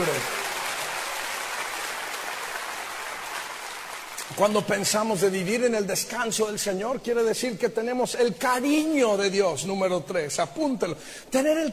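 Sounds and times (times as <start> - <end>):
crowd clapping loudly: 0.0 - 5.0
speech: 4.4 - 11.7.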